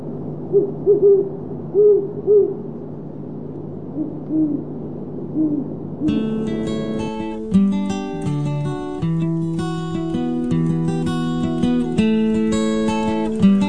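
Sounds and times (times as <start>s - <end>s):
faint hiss: 0.0s - 13.6s
great horned owl hooting outdoors: 0.4s - 2.7s, 3.9s - 6.3s
instrumental music: 6.1s - 13.6s.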